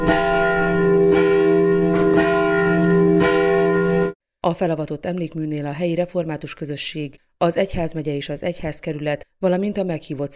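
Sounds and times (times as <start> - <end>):
church bells ringing at a memorial dedication: 0.0 - 4.2
speech: 4.5 - 10.3.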